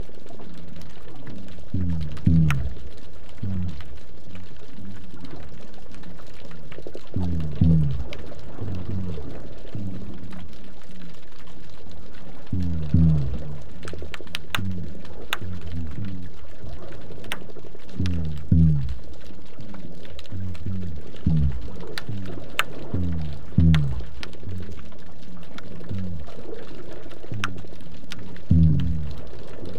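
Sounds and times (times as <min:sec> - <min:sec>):
amplified low-pass filtered drumming on a black drum: 0:01.7 - 0:04.0, 0:07.2 - 0:10.5, 0:12.5 - 0:16.5, 0:17.3 - 0:26.4, 0:27.2 - 0:29.7.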